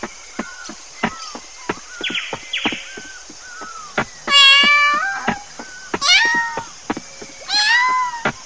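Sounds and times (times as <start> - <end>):
cat meowing: 4.3 - 5.4, 6.0 - 6.7, 7.5 - 8.3.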